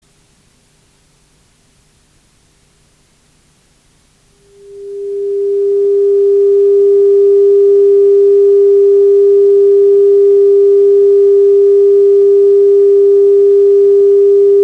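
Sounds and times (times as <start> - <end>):
low frequency noise: 4.4 - 14.6.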